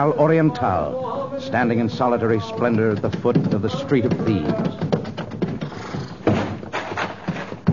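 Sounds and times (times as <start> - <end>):
speech: 0.0 - 4.8
horse galloping hoofbeats: 0.2 - 7.7.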